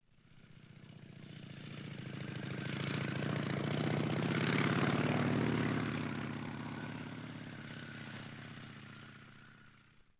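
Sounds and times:
car passing: 0:02.0 - 0:09.8.

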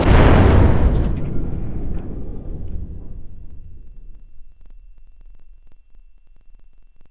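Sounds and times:
submarine hit: 0:00.0 - 0:05.6.

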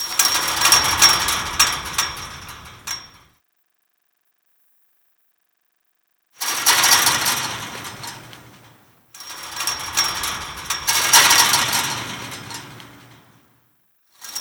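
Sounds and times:
metal chain-link rattle: 0:00.0 - 0:03.3, 0:06.4 - 0:13.5.

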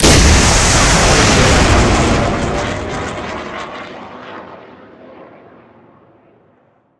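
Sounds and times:
weapons missile launch: 0:00.0 - 0:03.9.

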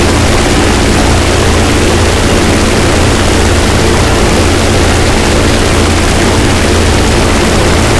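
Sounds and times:
bomber engine running close: 0:00.0 - 0:07.9.

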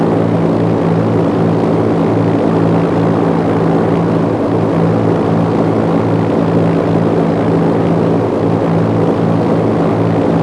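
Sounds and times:
helicopter engine: 0:00.0 - 0:10.4.

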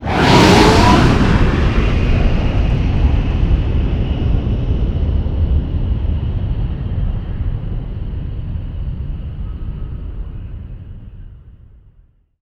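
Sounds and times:
MiG-29 jet fighter flyby: 0:00.0 - 0:10.6.

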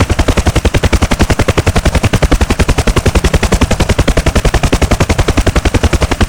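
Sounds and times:
UH-1H helicopter rotor: 0:00.0 - 0:06.2
aircraft engines: 0:00.0 - 0:06.2.

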